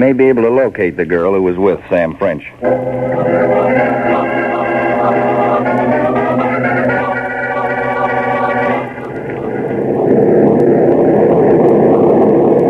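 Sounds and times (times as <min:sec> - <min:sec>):
speech: 0:00.0 - 0:04.4
propeller plane engine drone of a plane flying to New York: 0:02.6 - 0:12.6.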